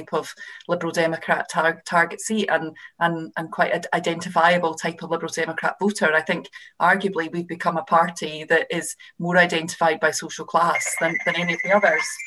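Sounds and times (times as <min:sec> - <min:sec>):
speech: 0:00.0 - 0:12.2
telephone ringing with electronic trill: 0:10.6 - 0:12.2.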